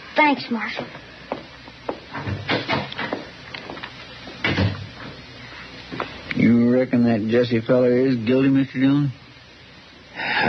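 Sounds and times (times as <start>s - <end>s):
speech: 0.2s - 1.1s, 6.4s - 9.2s
wooden door to jail cells opening and closing: 2.2s - 3.1s, 4.4s - 4.9s.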